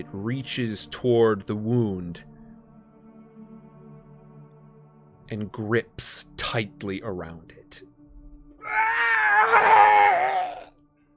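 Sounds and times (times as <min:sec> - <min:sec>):
speech: 0:00.0 - 0:02.3, 0:05.3 - 0:07.9, 0:08.6 - 0:10.0
person screaming in pain in a forest: 0:08.6 - 0:10.7.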